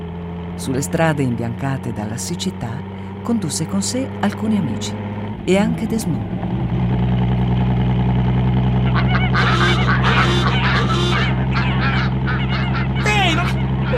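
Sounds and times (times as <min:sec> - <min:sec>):
car engine idling: 0:00.0 - 0:13.9
speech: 0:00.6 - 0:06.6
flock of geese honking: 0:08.8 - 0:13.9.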